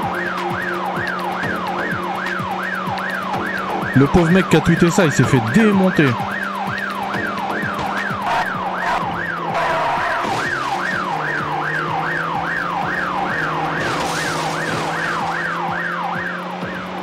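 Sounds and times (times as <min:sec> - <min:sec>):
emergency vehicle sirens wailing: 0:00.0 - 0:17.0
speech: 0:04.0 - 0:06.3.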